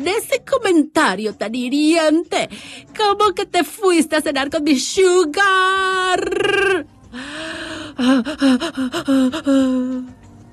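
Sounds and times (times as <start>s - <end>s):
speech: 0.0s - 10.2s
person gasping anxiously for breath: 7.1s - 10.1s.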